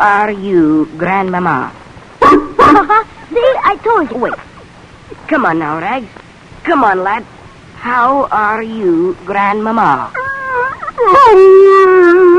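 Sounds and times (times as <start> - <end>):
speech: 0.0 - 4.5, 5.1 - 10.2, 11.0 - 12.2
dog yowling and whimpering: 10.1 - 11.4.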